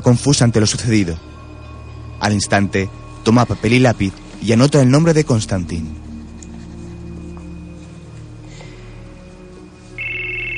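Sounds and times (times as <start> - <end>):
speech: 0.0 - 1.3, 2.2 - 6.0
mobile phone ringing: 10.0 - 10.5.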